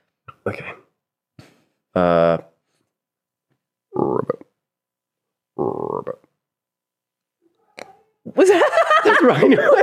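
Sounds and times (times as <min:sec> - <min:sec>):
speech: 0:00.4 - 0:00.8, 0:02.0 - 0:02.4, 0:09.2 - 0:09.8
person imitating a frog croak: 0:03.9 - 0:04.6, 0:05.6 - 0:06.4
laughter: 0:08.4 - 0:09.8.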